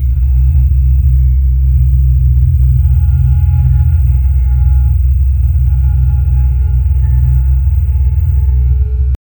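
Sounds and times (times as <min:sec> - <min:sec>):
mobile phone intense buzzing vibration: 0:00.0 - 0:09.2.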